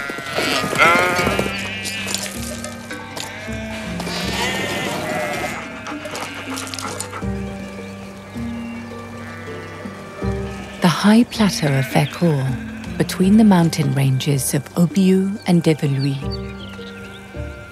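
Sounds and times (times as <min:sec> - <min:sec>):
large flock of sheep bleating at dusk: 0:00.0 - 0:14.2
speech: 0:11.0 - 0:16.6.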